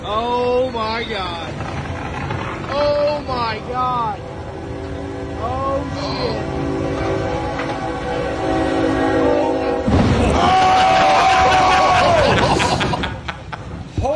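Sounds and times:
loud roaring rush of an arriving train: 0.0 - 14.0
speech: 0.1 - 1.7, 2.7 - 4.4
train horn blaring in a long sustained tone: 3.2 - 10.4
agitated voices shouting: 9.1 - 12.6
laughter: 10.6 - 14.0.

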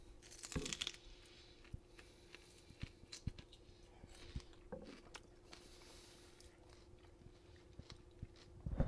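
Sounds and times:
biting and chewing a creamy leprechaun log snack: 0.2 - 3.6, 4.2 - 8.8.

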